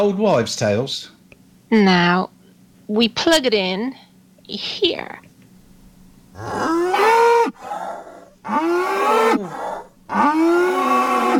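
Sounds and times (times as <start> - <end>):
speech: 0.0 - 5.2, 6.4 - 11.3
cow mooing: 6.4 - 11.3.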